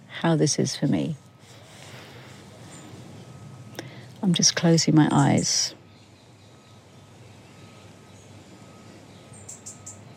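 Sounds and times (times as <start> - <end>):
city noise in London: 0.0 - 10.1
steady low hum of machinery: 0.0 - 10.1
speech: 0.2 - 1.2, 4.2 - 5.8
robin singing in London: 2.6 - 10.1.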